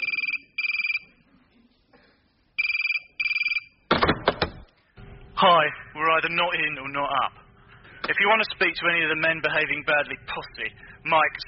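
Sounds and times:
telephone in Salisbury ringing in double bursts: 0.0s - 1.1s, 2.6s - 3.9s
speech: 5.4s - 7.4s, 8.1s - 11.4s.

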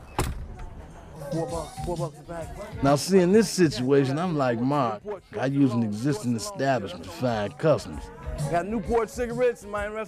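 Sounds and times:
door shutting with a dull thud: 0.0s - 0.8s
low murmur: 0.0s - 10.0s
speech: 1.3s - 10.0s.

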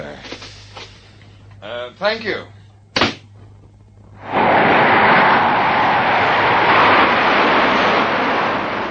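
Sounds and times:
faint low hum: 0.0s - 8.8s
speech: 1.6s - 2.6s
jet airliner engine roar during takeoff: 4.2s - 8.8s.

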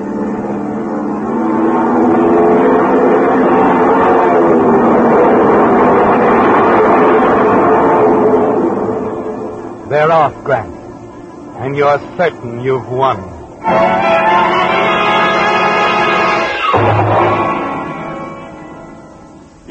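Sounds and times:
airplane engines roaring as the plane takes off: 0.0s - 19.7s
speech: 10.1s - 10.7s, 11.6s - 13.9s.

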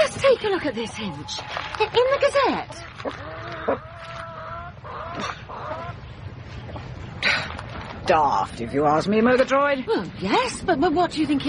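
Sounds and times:
steady rustle: 0.0s - 4.3s, 6.2s - 10.7s
hens clucking and squawking in a hen house: 0.0s - 7.2s
speech: 0.2s - 4.3s, 5.2s - 5.4s, 8.1s - 11.4s.

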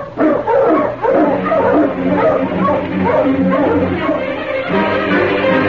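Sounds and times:
pack of sled dogs barking and yipping: 0.0s - 5.5s.

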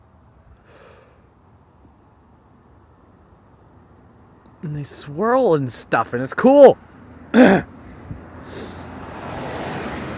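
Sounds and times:
speech: 4.6s - 7.7s
person throat-clearing or coughing: 7.3s - 7.7s
car with stuff sticking out of its trunk driving past: 8.1s - 10.1s.

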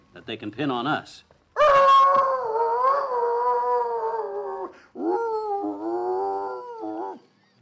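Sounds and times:
speech: 0.2s - 1.3s
dog howling in long wavering tuneful notes: 1.6s - 7.2s.

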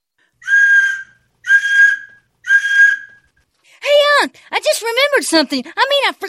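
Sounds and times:
sharp whistle blasts: 0.4s - 3.3s
speech: 4.2s - 6.2s.

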